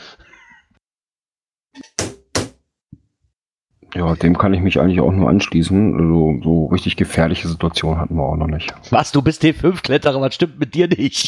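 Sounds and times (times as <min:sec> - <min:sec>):
sharp knocks on wood: 0:01.9 - 0:02.6
speech: 0:03.9 - 0:11.2.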